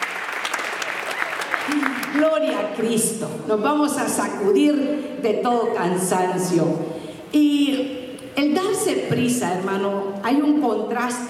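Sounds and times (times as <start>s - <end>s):
audience applauding: 0.0s - 2.2s
speech: 1.7s - 8.0s, 8.8s - 11.2s.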